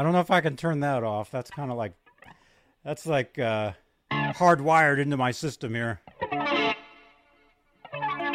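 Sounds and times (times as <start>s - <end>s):
speech: 0.0s - 2.0s, 2.8s - 6.6s
electric guitar through chorus pedal, stereo delay and reverb strumming chords: 4.1s - 5.0s, 6.0s - 8.3s.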